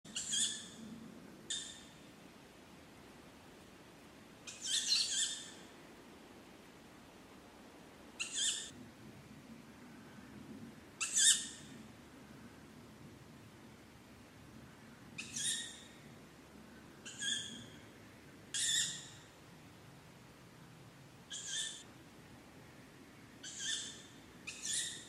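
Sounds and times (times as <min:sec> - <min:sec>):
young tawny owl calling: 0:00.1 - 0:00.8, 0:04.5 - 0:05.6, 0:08.2 - 0:08.7, 0:11.0 - 0:11.7, 0:15.2 - 0:16.0, 0:17.0 - 0:17.8, 0:18.5 - 0:19.3, 0:21.3 - 0:21.8, 0:23.4 - 0:25.0.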